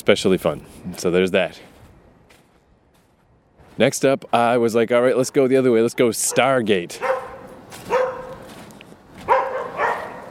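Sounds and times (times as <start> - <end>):
speech: 0.0 - 1.7, 3.8 - 7.1
dog barking: 6.2 - 8.5, 9.2 - 10.3.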